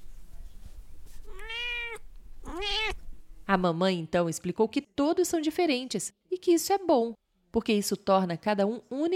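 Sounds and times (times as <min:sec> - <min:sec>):
kitten meowing: 0:01.3 - 0:03.0
speech: 0:03.5 - 0:09.1.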